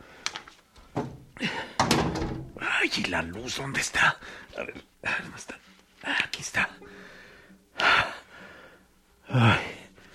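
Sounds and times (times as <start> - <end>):
wooden door swinging shut with solid thunks: 1.0 - 2.6
door latch rattling: 1.8 - 2.6
speech: 2.9 - 7.0, 9.3 - 9.6.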